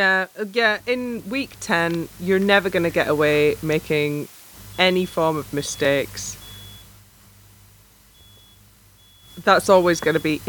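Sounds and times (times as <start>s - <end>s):
speech: 0.0s - 6.4s, 9.4s - 10.4s
low hum: 0.0s - 10.4s
fire alarm beeping with a thin high-pitched electronic tone: 4.6s - 7.0s, 8.1s - 10.4s.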